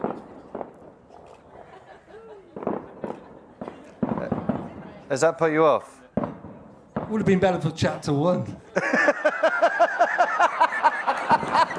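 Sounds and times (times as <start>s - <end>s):
fireworks exploding outside: 0.0s - 5.3s, 6.2s - 7.6s, 10.9s - 11.7s
laughter: 1.6s - 3.9s, 8.7s - 11.7s
speech: 5.1s - 6.0s, 7.1s - 9.1s.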